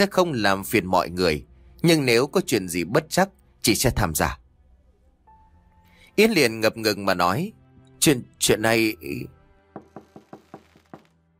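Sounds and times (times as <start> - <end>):
speech: 0.0 - 4.4, 6.2 - 9.4
knocking on a door: 9.7 - 11.1.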